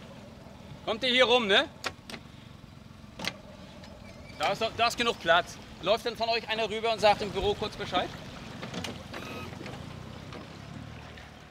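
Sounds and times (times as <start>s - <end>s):
boat motor rumbling in a harbor in Waren: 0.0s - 11.4s
wind in a harbor: 0.0s - 11.4s
speech: 0.9s - 1.8s, 4.4s - 8.2s
water lapping in a harbor: 2.5s - 11.4s.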